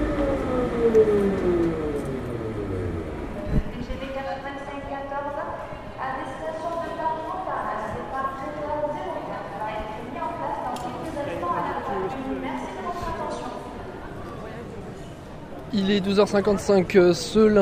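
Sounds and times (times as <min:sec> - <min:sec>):
descending tonal sweep at a train station in France: 0:00.0 - 0:03.9
speech: 0:00.9 - 0:01.7, 0:15.8 - 0:17.6
overlapping voices at a train station in Toulouse France: 0:03.2 - 0:17.6.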